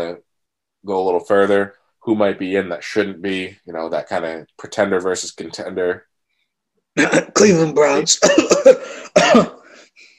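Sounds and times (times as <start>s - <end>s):
speech: 0.0s - 6.1s, 7.0s - 10.1s
person clearing their throat: 7.0s - 7.5s, 8.2s - 9.8s
harsh loud cough-like burst: 7.0s - 10.0s.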